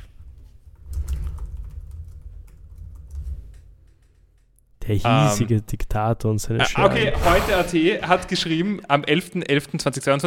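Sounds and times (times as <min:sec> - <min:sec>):
typing a web search on a computer keyboard: 0:00.8 - 0:04.5
speech: 0:04.9 - 0:10.2.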